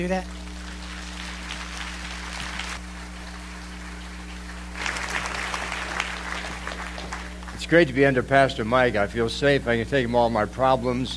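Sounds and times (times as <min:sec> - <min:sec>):
speech: 0:00.0 - 0:00.4, 0:07.6 - 0:11.1
church audience applauding to welcome a pastor: 0:00.0 - 0:07.7
constant low electrical hum: 0:00.0 - 0:11.1.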